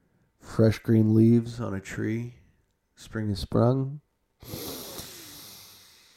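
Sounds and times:
speech: 0:00.6 - 0:02.4, 0:03.0 - 0:04.6
deep breath in and out: 0:04.4 - 0:06.1.

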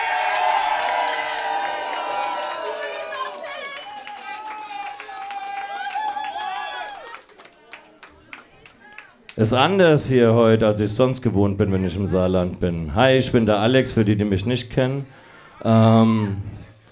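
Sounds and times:
crowd cheering and whooping: 0:00.0 - 0:07.8
crowd applauding a performance: 0:00.0 - 0:09.4
speech: 0:09.4 - 0:16.6.

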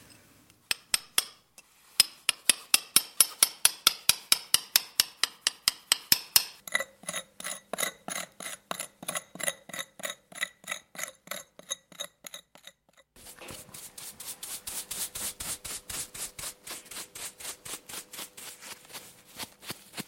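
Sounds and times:
hand tools scraping and tapping at an archaeological excavation site: 0:00.0 - 0:13.7.

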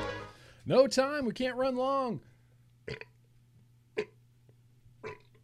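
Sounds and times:
steady low electrical hum: 0:00.3 - 0:05.4
speech: 0:00.7 - 0:02.3, 0:02.9 - 0:03.1
person burping after drinking beer: 0:02.9 - 0:03.2, 0:05.0 - 0:05.4.

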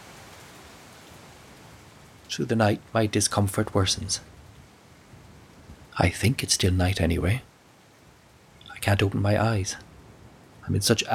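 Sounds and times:
steady rain falling at night: 0:00.0 - 0:11.1
speech: 0:02.3 - 0:04.4, 0:06.0 - 0:07.5, 0:08.8 - 0:09.9, 0:10.7 - 0:11.1.

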